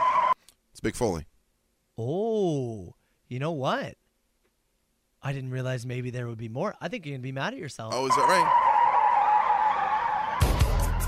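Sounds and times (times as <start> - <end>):
speech: 0.8 - 1.3, 2.0 - 4.0, 5.2 - 8.6
tire screech: 8.0 - 11.0.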